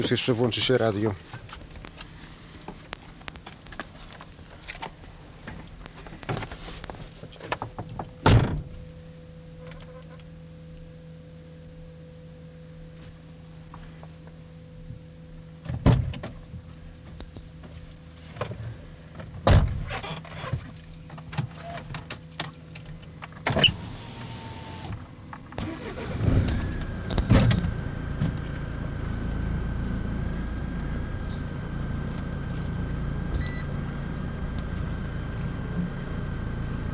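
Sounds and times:
speech: 0.0s - 1.5s
low steady hum: 0.0s - 36.9s
car door thunks and clunks: 8.2s - 8.8s, 19.4s - 19.9s, 25.7s - 28.4s.

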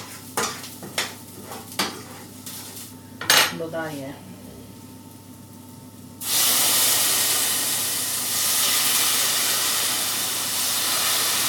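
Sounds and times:
spoon stirring buckwheat groats in a pan: 0.0s - 2.8s
soft steady sizzle in a pan: 0.0s - 11.4s
speech: 3.6s - 4.3s.

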